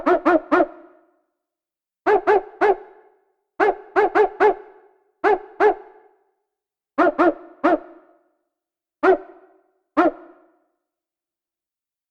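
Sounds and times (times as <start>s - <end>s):
dog barking: 0.0s - 1.0s, 2.1s - 6.2s, 7.0s - 8.1s, 9.0s - 10.6s.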